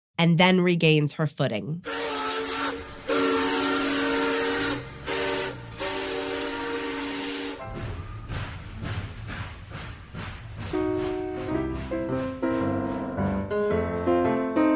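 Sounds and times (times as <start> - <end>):
speech: 0.2 - 2.0
steam whistle blowing: 1.8 - 8.1
train speeding along its tracks: 2.9 - 14.6.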